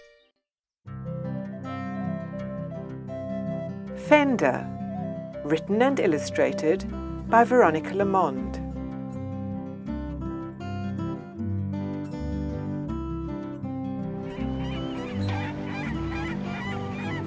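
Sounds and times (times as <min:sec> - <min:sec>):
steady musical backing: 0:00.9 - 0:17.2
speech: 0:04.0 - 0:04.8, 0:05.4 - 0:08.6
seagulls squawking overhead: 0:14.2 - 0:17.2.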